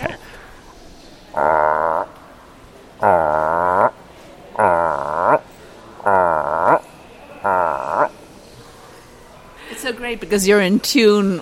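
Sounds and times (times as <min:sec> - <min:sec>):
person imitating frog croaking calls: 0:01.3 - 0:02.2, 0:03.0 - 0:05.4, 0:06.0 - 0:06.8, 0:07.4 - 0:08.1
speech: 0:10.1 - 0:11.4.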